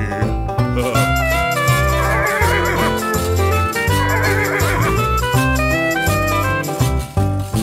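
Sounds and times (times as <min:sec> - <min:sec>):
bouncy full musical backing: 0:00.0 - 0:07.6
shrill wavering horse whinny: 0:01.2 - 0:05.2.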